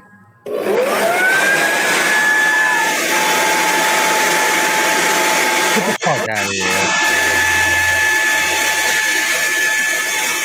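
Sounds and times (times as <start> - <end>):
leaf blower blasting air at a door: 0.5 - 10.4
speech: 5.8 - 7.2.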